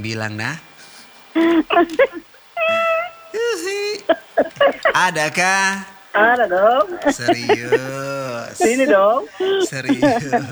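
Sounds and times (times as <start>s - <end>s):
speech: 0.0s - 0.7s, 1.4s - 2.3s, 4.1s - 10.5s
laughter: 0.0s - 10.5s
cat meowing: 1.4s - 5.3s, 6.2s - 10.5s.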